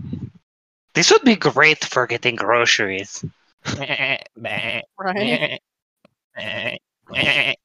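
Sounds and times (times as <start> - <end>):
speech: 1.0 - 5.7, 6.4 - 7.6
goats bleating in a video game: 3.7 - 5.6, 6.4 - 7.6.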